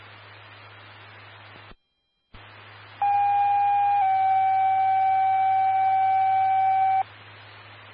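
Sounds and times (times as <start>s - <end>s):
low hum: 3.0s - 7.0s
two-tone radio dispatch paging alert for a fire alarm call: 3.0s - 7.0s.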